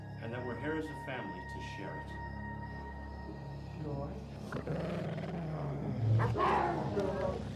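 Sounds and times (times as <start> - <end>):
speech: 0.2 - 2.4, 3.8 - 7.5
woman making wolf-like snarling and growling: 4.5 - 7.5.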